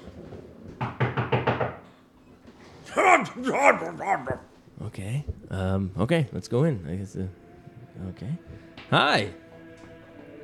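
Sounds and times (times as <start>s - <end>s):
knocks on an office door: 0.8s - 1.8s
speech: 2.9s - 7.4s, 8.0s - 9.4s.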